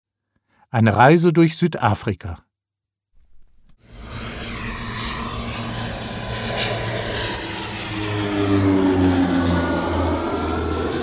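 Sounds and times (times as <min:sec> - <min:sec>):
speech: 0:00.7 - 0:02.5
propeller aircraft engine drone as an airplane lands at a small bush airfield in South Africa: 0:03.8 - 0:11.0.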